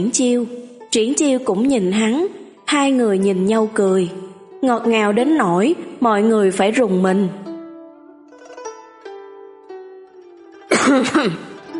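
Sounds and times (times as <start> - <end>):
speech: 0.0 - 7.5, 11.0 - 11.5
man giving a dry cough and clearing his throat: 10.7 - 11.6.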